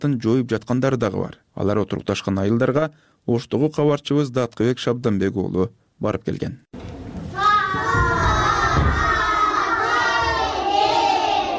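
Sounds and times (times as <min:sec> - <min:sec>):
speech: 0:00.0 - 0:06.9
dull thumps: 0:06.8 - 0:09.5
first-grade schoolchildren shouting together in a village school classroom: 0:07.3 - 0:11.5.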